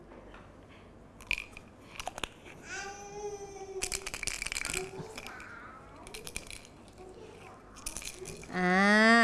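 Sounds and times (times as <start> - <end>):
red beans rattling in a jar: 1.2 - 2.5, 3.8 - 7.1, 7.8 - 8.6.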